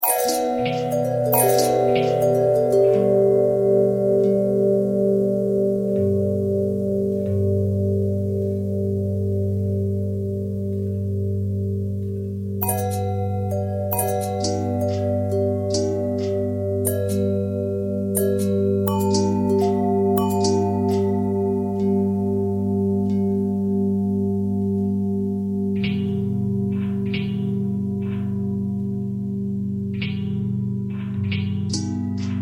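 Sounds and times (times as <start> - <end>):
long bell tones with harmonic twist: 0.0 - 12.0, 12.6 - 32.4.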